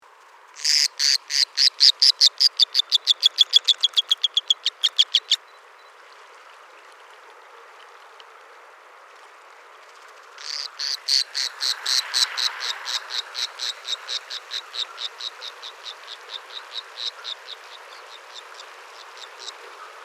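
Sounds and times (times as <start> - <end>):
White-bellied cinclodes calling: 0.6 - 5.6, 10.4 - 20.0.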